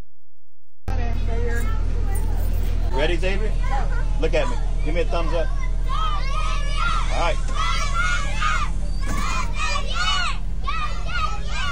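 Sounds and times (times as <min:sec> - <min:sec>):
school bus engine rumbling: 0:00.9 - 0:11.6
voices chattering: 0:00.9 - 0:11.6
speech: 0:03.0 - 0:05.6, 0:07.2 - 0:07.7
classmates cheering: 0:03.6 - 0:11.6.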